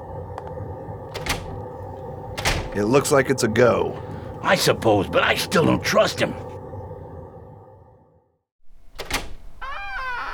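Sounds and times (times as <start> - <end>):
low hum: 0.0 - 9.6
door creaking open with wavering squeals: 1.1 - 3.0, 8.9 - 10.3
cheap door lock being picked: 1.2 - 1.5
speech: 2.8 - 6.4.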